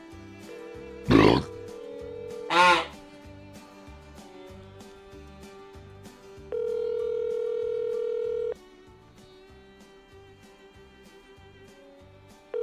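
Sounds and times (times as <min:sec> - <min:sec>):
phone ringback tone: 0:00.5 - 0:02.8, 0:06.5 - 0:08.6
phone dialing tones: 0:06.5 - 0:08.6.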